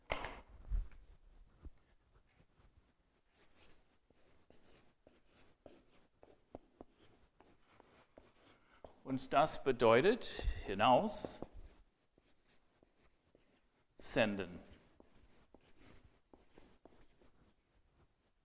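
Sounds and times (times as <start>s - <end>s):
word written down by hand in scratchy strokes: 3.2s - 9.0s, 10.4s - 17.6s
speech: 9.1s - 11.5s, 14.2s - 14.8s.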